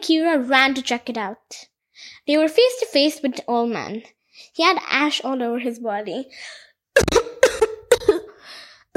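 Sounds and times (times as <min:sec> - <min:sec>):
speech: 0:00.0 - 0:07.2
people coughing harshly: 0:07.0 - 0:08.2.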